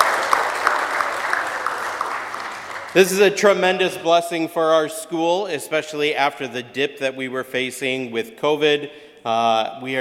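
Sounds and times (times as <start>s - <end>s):
audience clapping at a school gathering: 0.0s - 3.7s
speech: 2.9s - 9.9s.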